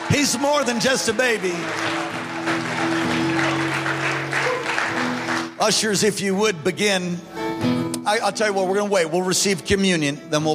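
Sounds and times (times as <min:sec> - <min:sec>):
large crowd clapping at a worship service: 0:00.0 - 0:06.0
sustained organ or keyboard chords: 0:00.0 - 0:10.5
speech: 0:00.1 - 0:02.4, 0:05.6 - 0:10.5.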